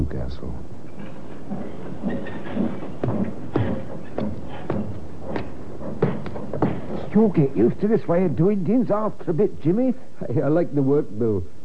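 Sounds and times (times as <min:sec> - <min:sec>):
speech: 0:00.0 - 0:02.8, 0:07.2 - 0:11.6
train wheels clacking over rail joints in a railroad yard at Alnmouth: 0:01.0 - 0:08.2.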